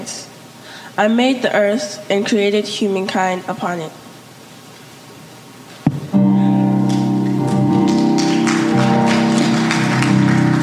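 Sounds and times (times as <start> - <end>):
speech: 1.0 - 4.0
sharp thump: 5.8 - 6.2
audience applauding at a Baptist church: 6.7 - 10.6.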